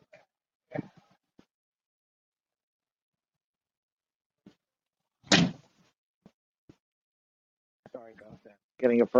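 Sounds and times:
door shutting with a solid thud: 0:05.3 - 0:05.6
speech: 0:08.1 - 0:09.1.

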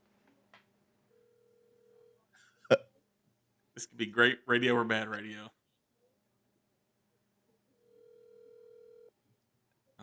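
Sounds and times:
steady electronic phone ringing tone: 0:01.1 - 0:02.3, 0:07.8 - 0:09.2
speech: 0:03.8 - 0:05.6.

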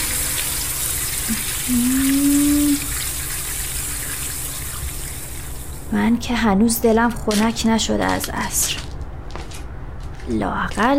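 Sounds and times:
running water while watering plants: 0:00.0 - 0:06.3
speech: 0:01.3 - 0:02.3, 0:05.9 - 0:08.9, 0:10.3 - 0:10.9.

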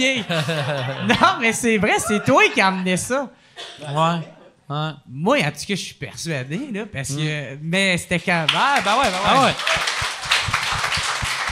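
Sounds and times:
laughter: 0:00.0 - 0:03.1
speech: 0:00.0 - 0:09.9
crowd applauding: 0:08.4 - 0:11.5.

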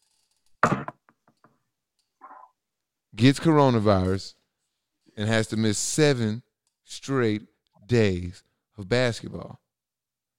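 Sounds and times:
short thump: 0:00.6 - 0:01.0
loud knock on wood: 0:00.6 - 0:01.2
speech: 0:03.2 - 0:04.4, 0:05.2 - 0:09.6.

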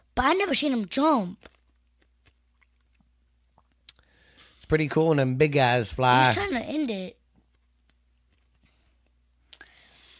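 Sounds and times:
speech: 0:00.2 - 0:01.6, 0:04.7 - 0:07.2
crunching a hard cough drop between the teeth: 0:01.4 - 0:04.0.

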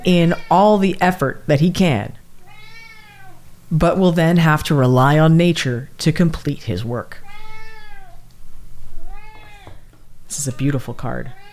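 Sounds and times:
hungry female cat meowing for food: 0:00.0 - 0:00.8, 0:02.4 - 0:03.5, 0:07.2 - 0:08.2, 0:09.0 - 0:09.9, 0:10.6 - 0:11.5
speech: 0:00.0 - 0:02.2, 0:03.7 - 0:07.2, 0:10.3 - 0:11.4
low steady hum: 0:00.0 - 0:11.5.

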